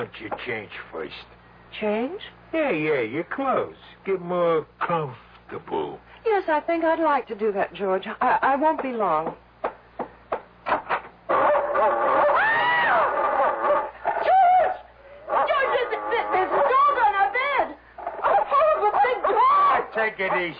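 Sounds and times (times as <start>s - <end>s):
speech: 0.0s - 9.4s, 20.2s - 20.5s
dog barking sharply: 11.3s - 20.5s
dog whining and whimpering: 11.4s - 17.0s.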